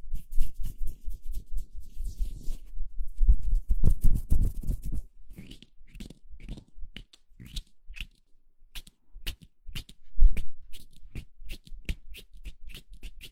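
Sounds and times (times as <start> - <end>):
hands rubbing together: 0.2 - 2.6, 3.9 - 8.2, 8.8 - 13.2
crisp dry ticks and scrapes: 4.0 - 13.2.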